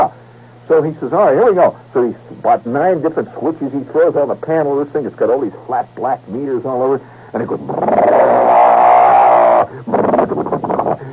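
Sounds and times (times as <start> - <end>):
speech: 0.0 - 8.6, 9.7 - 10.0
voice imitating a starter motor's siren-like whine: 7.4 - 11.1
laughter: 9.7 - 11.1.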